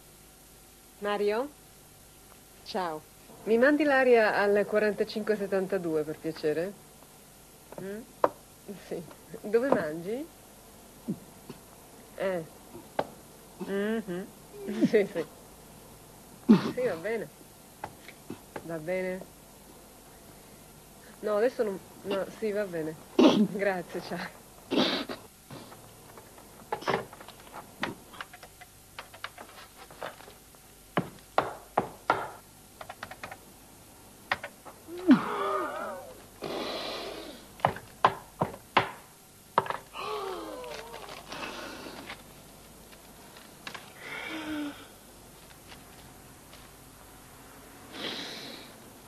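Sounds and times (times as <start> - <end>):
faint room hum: 0.0 - 49.0
speech: 1.0 - 1.6, 2.7 - 6.8, 7.8 - 8.1, 8.7 - 10.4, 12.2 - 12.8, 13.6 - 15.4, 16.5 - 17.4, 18.6 - 19.3, 21.2 - 24.9
office rubber stamps thumping on paper: 30.9 - 33.4, 37.6 - 39.9
keyboard typing clicks: 32.8 - 33.4
soft breathy noise bursts: 36.4 - 37.6, 47.9 - 48.9.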